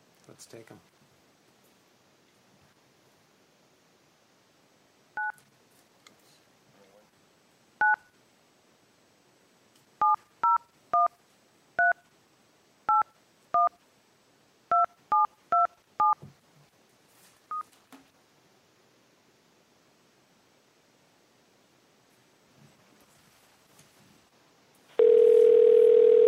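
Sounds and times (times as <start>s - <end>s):
faint hiss: 0.0s - 26.2s
speech: 0.3s - 1.0s
touch-tone telephone dialing beeps: 25.0s - 26.2s.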